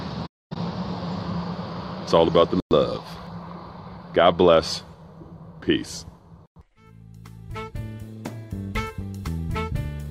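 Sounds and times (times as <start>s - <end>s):
car driving past: 0.0s - 6.5s
speech: 2.1s - 3.2s, 4.2s - 4.9s, 5.6s - 6.1s.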